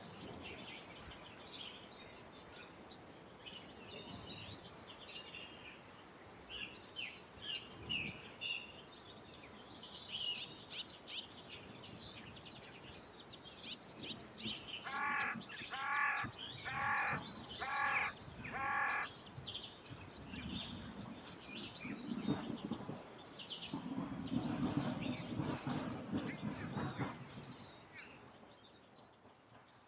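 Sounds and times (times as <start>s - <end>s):
faint outdoor noise: 0.0s - 29.8s
harsh crow caws: 14.8s - 19.1s
squeaky blue tit calls: 14.8s - 19.1s.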